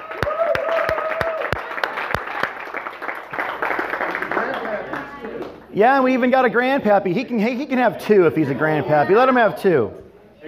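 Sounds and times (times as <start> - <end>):
people cheering: 0.0 - 5.1
audience applauding at a pancake breakfast: 0.0 - 5.6
speech: 5.8 - 10.0.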